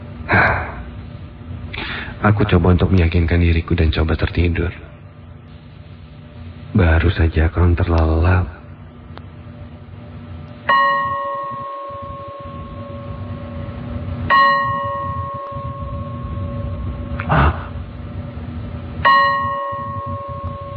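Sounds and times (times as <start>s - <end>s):
low steady rumble: 0.0s - 20.7s
speech: 2.2s - 4.9s, 6.8s - 8.6s
bell ringing: 10.7s - 13.7s, 14.3s - 17.2s, 19.0s - 20.7s.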